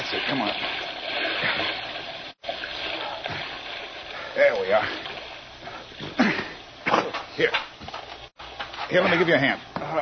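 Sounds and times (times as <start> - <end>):
water splashing from people swimming: 0.0 - 7.8
speech: 0.3 - 0.7, 4.4 - 5.1, 7.4 - 7.6, 8.9 - 10.0.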